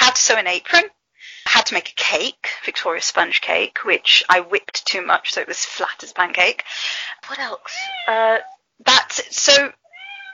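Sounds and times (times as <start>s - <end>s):
speech: 0.2s - 9.8s
cat meowing: 7.7s - 8.6s, 9.9s - 10.3s.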